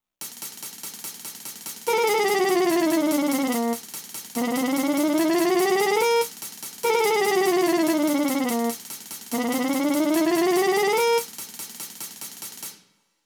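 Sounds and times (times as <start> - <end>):
mechanical chromatic mono motif: 1.9 - 3.8, 4.4 - 6.3, 6.9 - 8.8, 9.4 - 11.2.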